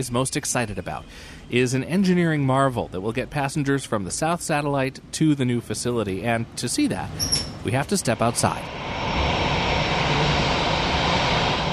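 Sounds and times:
speech: 0:00.0 - 0:09.2
jet airliner engines roaring while taxiing on airport taxiway: 0:06.5 - 0:11.7.

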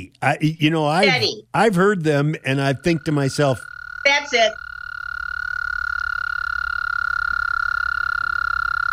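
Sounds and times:
speech: 0:00.0 - 0:04.7
toad giving a fast steady trill: 0:02.4 - 0:08.9.

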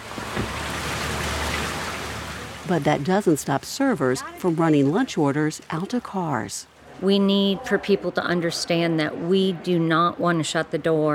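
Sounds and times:
steady rain falling on an outdoor restaurant patio in Mount Pleasant: 0:00.0 - 0:09.5
speech: 0:02.7 - 0:11.1.

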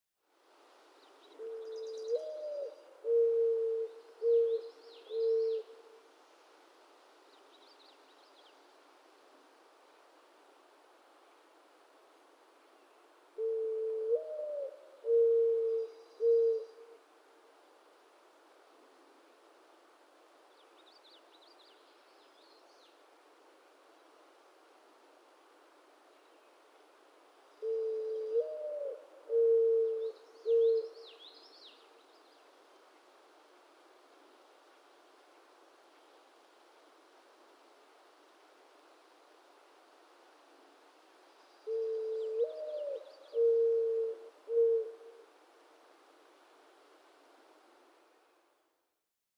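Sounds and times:
mourning dove cooing: 0:01.3 - 0:06.1, 0:13.4 - 0:17.0, 0:27.6 - 0:31.9, 0:41.6 - 0:45.4.

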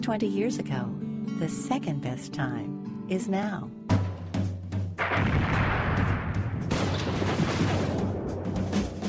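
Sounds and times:
speech: 0:00.0 - 0:04.1
fireworks exploding: 0:05.0 - 0:08.9.

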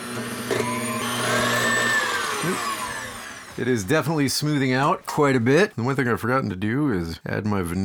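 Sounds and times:
electric mixer beating a cooked mixture: 0:00.0 - 0:04.0
speech: 0:03.6 - 0:07.8.

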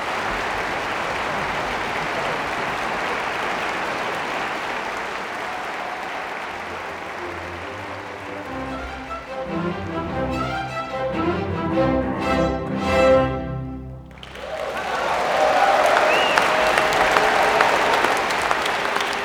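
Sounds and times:
large concert hall audience applauding and cheering: 0:00.0 - 0:12.2, 0:13.8 - 0:19.2
sustained final musical chord: 0:07.3 - 0:14.2.

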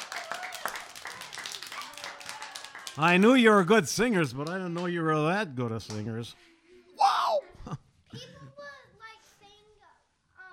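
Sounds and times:
audience clapping after a sing-along: 0:00.0 - 0:06.2
speech: 0:03.0 - 0:06.5.

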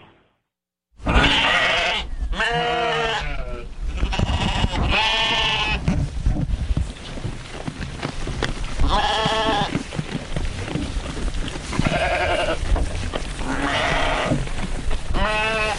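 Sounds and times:
flock of sheep bleating at supper time: 0:01.0 - 0:05.8, 0:08.8 - 0:09.7, 0:11.8 - 0:12.7, 0:13.4 - 0:14.4, 0:15.1 - 0:15.7
sheep chewing, rustling and shuffling while eating: 0:03.8 - 0:15.7.

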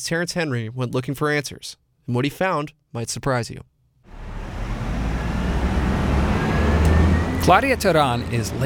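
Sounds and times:
speech: 0:00.0 - 0:03.7, 0:07.4 - 0:08.6
low engine rumble: 0:04.1 - 0:08.6
street traffic roar at a city bus stop: 0:04.1 - 0:08.6
tire noise from passing vehicles: 0:04.1 - 0:08.6.

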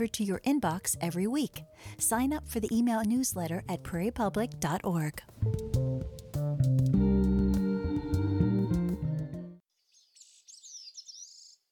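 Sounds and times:
speech: 0:00.0 - 0:07.0
instrumental music: 0:01.6 - 0:09.6
Bicknell's thrush singing at dawn on a mountain summit in Vermont: 0:06.9 - 0:09.6.

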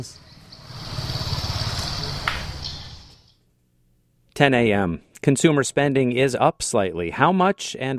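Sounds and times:
speech: 0:00.0 - 0:00.2, 0:04.4 - 0:07.9
motorcycle engine rumbling past: 0:00.0 - 0:03.4.

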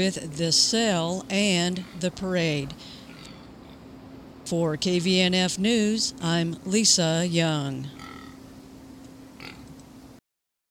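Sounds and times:
speech: 0:00.0 - 0:03.0, 0:04.5 - 0:08.1
pig grunting and snuffling against a microphone: 0:08.0 - 0:08.4, 0:09.4 - 0:09.6
pig snorting: 0:08.0 - 0:08.4, 0:09.4 - 0:09.7.

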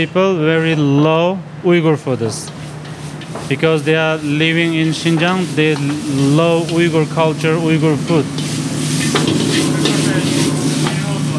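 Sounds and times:
speech: 0:00.0 - 0:02.6, 0:03.5 - 0:10.5
chicken, tomatoes, napa cabbage, mushroom and garlic sizzling in a hot pan: 0:02.5 - 0:11.2
low hum: 0:08.6 - 0:11.3.

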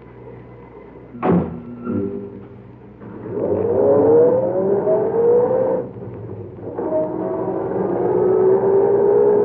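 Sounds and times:
car engine revving and pulling away from a service station at night: 0:03.0 - 0:09.4.

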